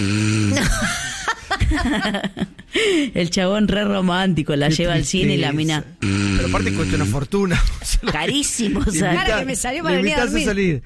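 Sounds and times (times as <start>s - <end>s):
person imitating a loud snore: 0.0s - 0.9s, 6.0s - 7.2s
people chuckling and laughing: 0.6s - 2.7s, 7.5s - 9.4s
speech: 1.8s - 10.8s.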